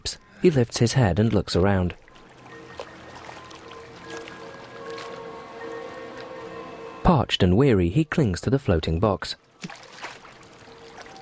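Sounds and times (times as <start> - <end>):
speech: 0.1 - 2.0, 7.3 - 9.8
gentle sea waves lapping against a man's body: 0.2 - 7.0, 9.5 - 11.1
faint steady engine drone of a long speedboat: 2.0 - 7.1.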